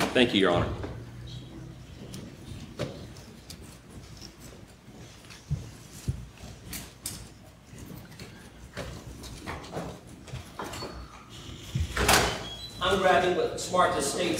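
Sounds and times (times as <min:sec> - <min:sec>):
speech: 0:00.2 - 0:00.8, 0:13.7 - 0:14.3
courtroom door being opened: 0:08.8 - 0:13.0.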